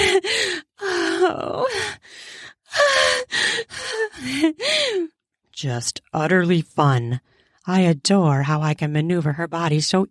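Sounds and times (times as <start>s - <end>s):
woman gasping: 0.0s - 5.1s
speech: 5.6s - 10.0s.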